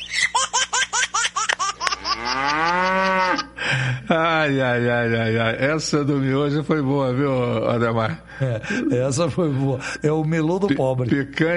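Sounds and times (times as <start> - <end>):
choppy laugh-like bursts: 0.1 - 3.5
ox mooing: 2.0 - 3.5
speech: 4.1 - 11.5.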